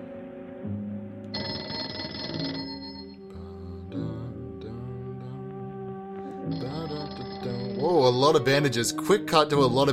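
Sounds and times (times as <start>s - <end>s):
sustained tones: 1.4s - 3.2s, 6.5s - 8.8s
telephone ringing: 1.4s - 3.2s, 6.5s - 8.1s
speech: 8.1s - 9.9s.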